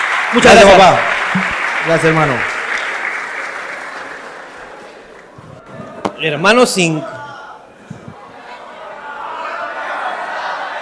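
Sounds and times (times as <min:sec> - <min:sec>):
audience applause: 0:00.0 - 0:06.1
speech: 0:00.3 - 0:02.5, 0:06.2 - 0:07.2.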